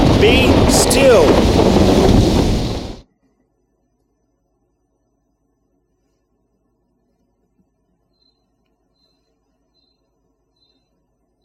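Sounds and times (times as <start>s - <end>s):
loud rushing wind around a boat: 0.0s - 3.0s
surging sea waves around a boat: 0.0s - 3.0s
speech: 0.2s - 2.3s.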